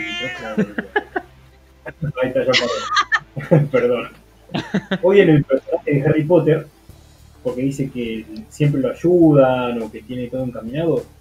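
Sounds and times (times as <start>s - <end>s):
female cat meowing: 0.0s - 0.8s
laughter: 0.0s - 1.3s, 1.9s - 6.0s
speech: 0.2s - 1.0s, 2.0s - 6.8s, 7.4s - 11.1s.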